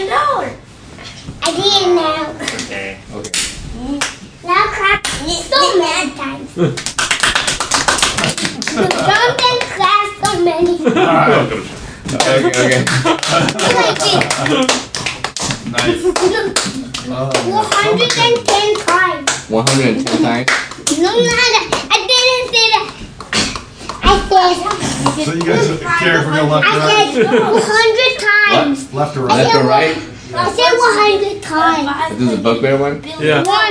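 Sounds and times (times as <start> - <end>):
children talking and chanting: 1.4 - 2.6, 3.8 - 6.6, 8.7 - 11.0, 13.3 - 14.7, 16.0 - 19.6, 20.2 - 32.3, 33.0 - 33.6
speech: 1.5 - 7.0, 8.4 - 14.9, 15.6 - 22.9, 24.1 - 33.6
rhythmic hand clapping in a clapping game: 6.7 - 10.8, 12.1 - 25.6
laughter: 8.3 - 9.4, 10.8 - 14.9, 15.7 - 16.9, 27.0 - 28.0.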